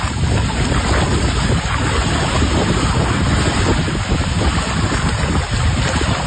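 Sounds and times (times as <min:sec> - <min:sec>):
buffeting wind noise: 0:00.0 - 0:06.2
water rushing through open dam spillway: 0:00.0 - 0:06.2.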